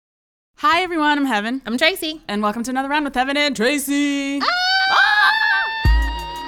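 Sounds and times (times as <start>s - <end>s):
speech: 0.6s - 5.1s
excited crowd screaming: 4.4s - 6.4s.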